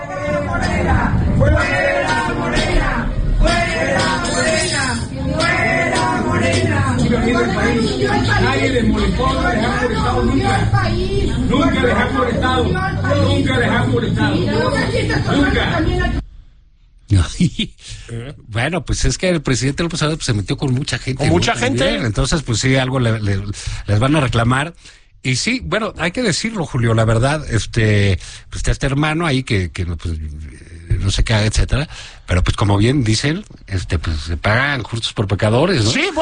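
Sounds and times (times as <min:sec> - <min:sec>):
dense crowd shouting and yelling at someone: 0:00.0 - 0:13.6
speech: 0:07.6 - 0:16.2, 0:17.4 - 0:36.2.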